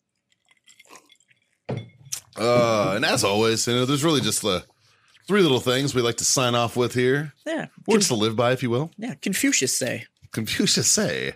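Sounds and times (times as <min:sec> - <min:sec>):
glasses clinking in a toast among friends: 0:00.8 - 0:03.4
speech: 0:02.4 - 0:04.7, 0:05.3 - 0:11.3.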